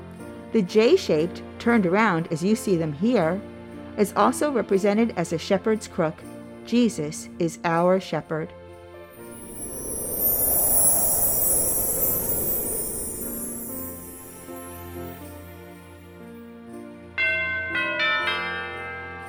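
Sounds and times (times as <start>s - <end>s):
speech: 0.5s - 8.6s
church bells ringing: 17.2s - 19.2s.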